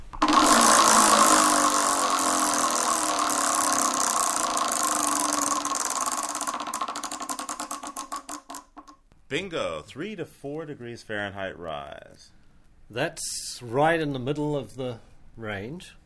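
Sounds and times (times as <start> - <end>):
game-show prize wheel whirring as it spins: 0.0 - 8.9
speech: 9.3 - 16.0.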